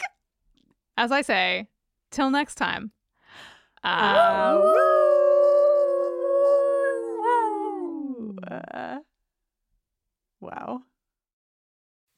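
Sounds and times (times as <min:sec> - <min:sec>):
speech: 0:01.0 - 0:04.9, 0:08.7 - 0:09.1, 0:10.4 - 0:10.9
dog howling: 0:04.0 - 0:08.6.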